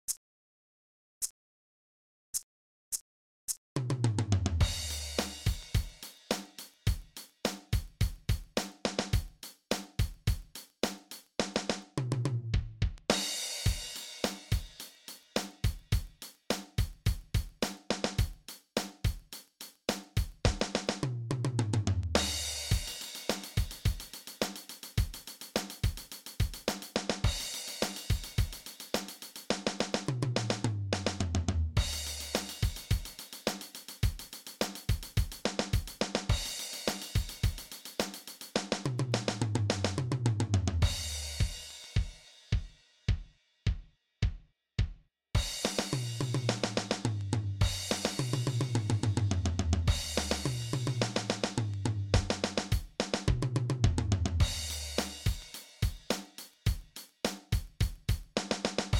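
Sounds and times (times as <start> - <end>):
drums: 3.8 - 58.9.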